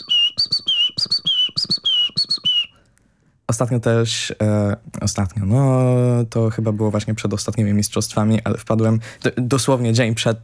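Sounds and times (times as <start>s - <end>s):
person whistling an imitation of great tit song: 0.0s - 2.8s
speech: 3.5s - 10.4s.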